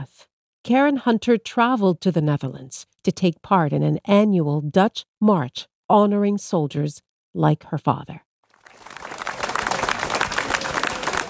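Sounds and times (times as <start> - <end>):
speech: 0.0 - 8.2
large crowd cheering and clapping at march finish line: 8.5 - 11.2.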